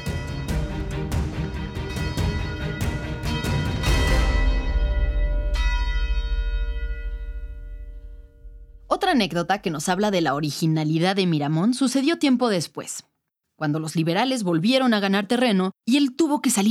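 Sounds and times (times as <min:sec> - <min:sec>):
large cathedral church bells pealing: 0:00.0 - 0:08.6
speech: 0:09.1 - 0:16.6.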